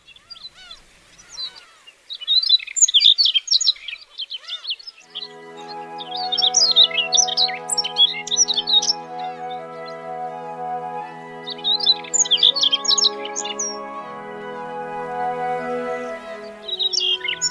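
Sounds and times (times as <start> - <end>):
Siberian rubythroat singing: 1.2 - 17.4
soft steady musical drone: 5.1 - 17.4.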